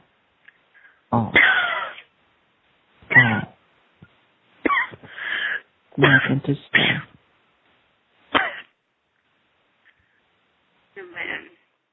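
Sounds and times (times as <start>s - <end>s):
speech: 1.1s - 1.4s, 6.0s - 7.1s
person coughing: 1.2s - 2.0s, 3.1s - 3.6s, 4.7s - 5.1s, 6.0s - 7.2s, 8.3s - 8.7s
rush of breath or hiss: 5.0s - 5.7s.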